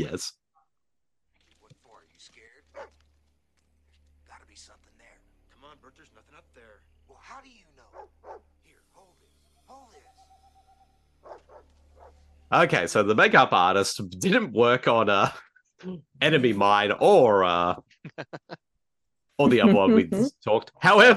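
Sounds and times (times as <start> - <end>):
speech: 0.0 - 0.4, 12.5 - 18.6, 19.4 - 21.1
dog barking and howling yips: 7.9 - 8.5, 11.2 - 12.2
laughter: 12.7 - 15.4, 16.2 - 18.6, 19.4 - 21.1.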